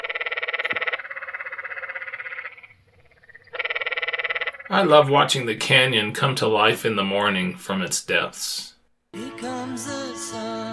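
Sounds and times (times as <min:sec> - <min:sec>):
canyon tree frogs calling at night: 0:00.0 - 0:04.8
speech: 0:04.7 - 0:08.7.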